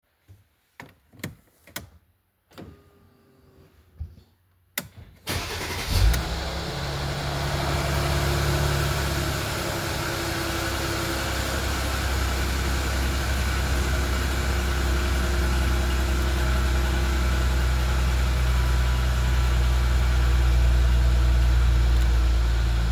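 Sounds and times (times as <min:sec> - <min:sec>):
coupe car engine cold start: 0:05.2 - 0:22.8.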